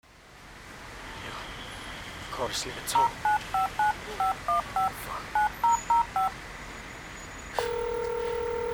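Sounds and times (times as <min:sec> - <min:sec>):
speech: 0:02.4 - 0:06.6
touch-tone beeps of a phone number being dialed: 0:03.0 - 0:06.4, 0:07.6 - 0:08.7.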